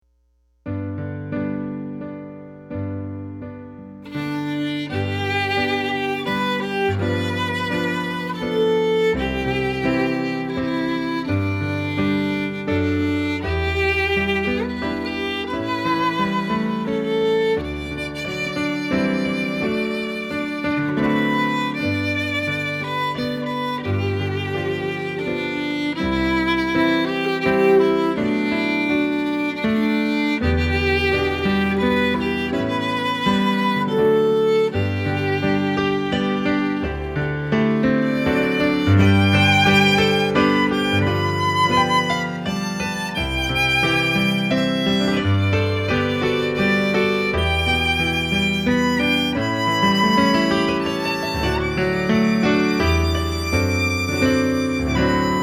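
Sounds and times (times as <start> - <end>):
piano: 0.6 - 55.4
violin: 1.0 - 55.4.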